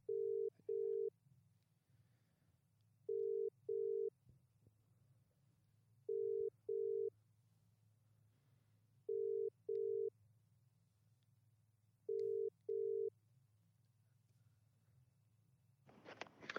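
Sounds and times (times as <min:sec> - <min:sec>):
outgoing phone call double burr ringing tone: 0:00.1 - 0:01.1, 0:03.1 - 0:04.1, 0:06.1 - 0:07.1, 0:09.1 - 0:10.1, 0:12.1 - 0:13.1.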